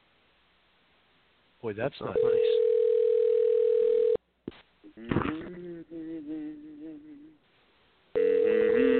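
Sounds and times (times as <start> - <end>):
speech: 1.6 - 2.7, 5.0 - 5.6
electronic ringback tone of an unanswered outgoing phone call: 2.2 - 4.2, 8.2 - 8.9.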